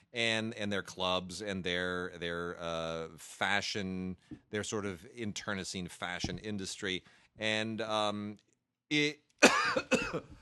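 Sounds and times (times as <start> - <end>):
speech: 0.1 - 10.4
person coughing: 9.4 - 10.4.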